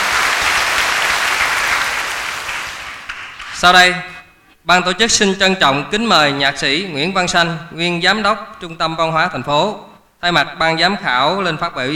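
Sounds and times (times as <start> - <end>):
audience applause at a singing festival: 0.0 - 3.4
speech: 3.6 - 11.9.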